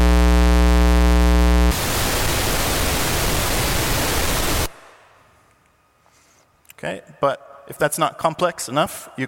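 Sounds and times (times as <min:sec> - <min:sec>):
low square-wave tone from a Minimoog synthesizer: 0:00.0 - 0:06.0
Minimoog synthesizer noise generator broadband hiss: 0:01.1 - 0:05.2
speech: 0:06.8 - 0:09.2.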